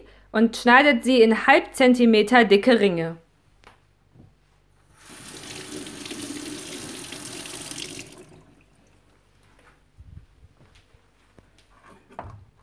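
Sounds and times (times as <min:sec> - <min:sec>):
speech: 0:00.3 - 0:03.2
running tap water rinsing spring onions: 0:04.9 - 0:09.2.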